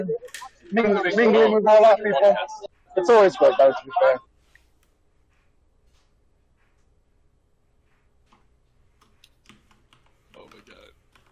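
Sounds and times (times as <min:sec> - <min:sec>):
laughter: 0:00.0 - 0:04.3
speech: 0:00.0 - 0:04.3
fingers typing on a computer keyboard: 0:09.0 - 0:11.2.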